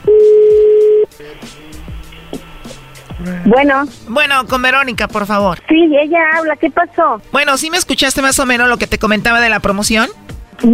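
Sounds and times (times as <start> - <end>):
telephone line noise: 0.0 - 1.1
speech: 3.2 - 10.7.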